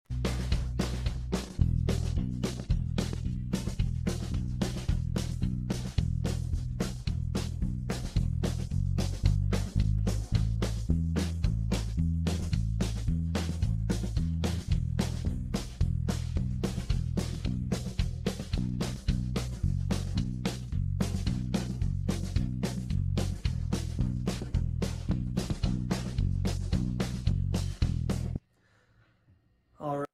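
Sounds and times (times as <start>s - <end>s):
chicken pickin country blues guitar backing track: 0.2s - 28.4s.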